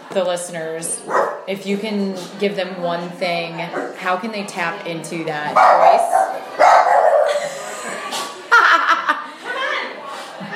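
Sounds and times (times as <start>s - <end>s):
speech: 0.2s - 6.5s
dogs barking in short loud bursts: 1.0s - 1.5s, 5.6s - 7.5s
dog yipping: 1.1s - 1.4s, 5.6s - 7.4s
laughter: 7.2s - 9.8s, 10.4s - 10.5s.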